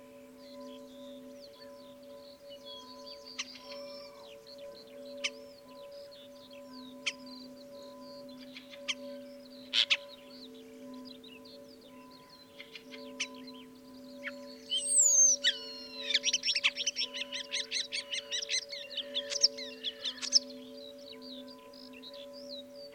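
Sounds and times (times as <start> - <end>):
Sturnus vulgaris common starling singing: 0.0 - 22.9.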